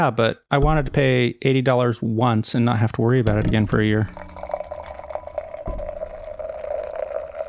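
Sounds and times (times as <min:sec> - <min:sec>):
speech: 0:00.0 - 0:04.5
soft thump: 0:00.6 - 0:01.2, 0:03.3 - 0:04.1, 0:05.6 - 0:06.5
beer pouring into a glass: 0:03.3 - 0:07.4.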